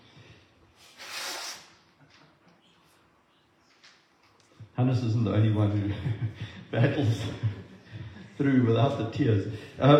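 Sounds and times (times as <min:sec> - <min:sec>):
forceful nose blow: 0:00.8 - 0:01.8
speech: 0:04.8 - 0:07.7, 0:08.4 - 0:09.9.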